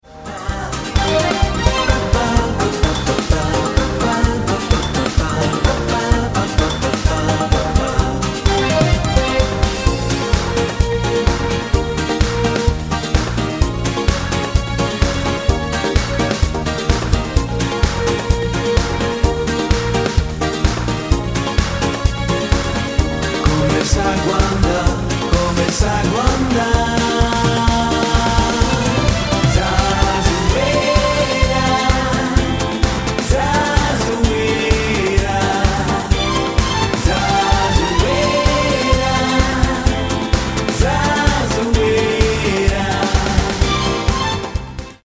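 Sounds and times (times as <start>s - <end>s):
disco samba medley: 0.0s - 45.0s.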